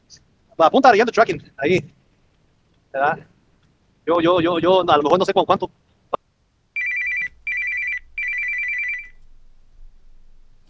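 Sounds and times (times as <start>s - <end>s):
faint low hum: 0.0s - 10.6s
speech: 0.1s - 2.0s, 2.9s - 3.3s, 4.0s - 5.8s
telephone ringing with an incoming call: 6.8s - 9.2s.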